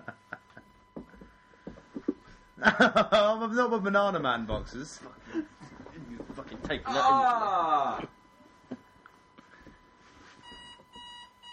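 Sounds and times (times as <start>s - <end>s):
burst of laughter: 0.0s - 0.7s, 2.6s - 3.3s
speech: 2.6s - 5.5s, 6.4s - 8.2s
electronic pill reminder alarm beeping: 10.3s - 11.5s.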